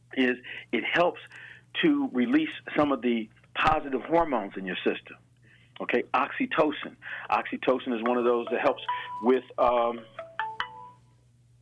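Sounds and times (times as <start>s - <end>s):
speech: 0.1s - 5.2s, 5.8s - 10.2s
mobile phone ringing with bright electronic chime notes: 8.0s - 11.0s.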